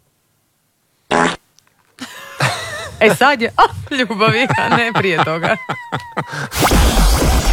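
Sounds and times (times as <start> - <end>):
fart: 1.1 - 1.4
laughter: 2.0 - 6.5
speech: 3.0 - 7.4.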